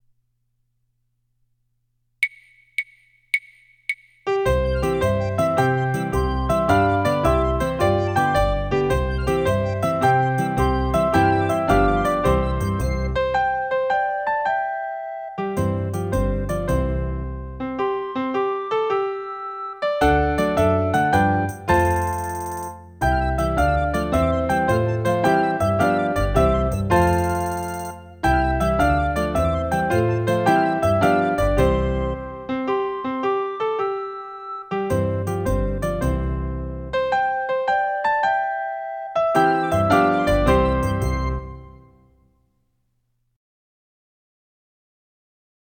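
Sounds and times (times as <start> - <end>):
solo with accompaniment: 4.3 - 42.3.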